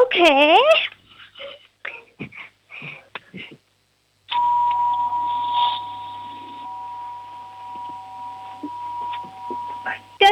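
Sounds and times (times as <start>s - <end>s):
speech: 0.1s - 0.8s
doorbell ringing as a long steady buzzing tone: 4.3s - 10.3s.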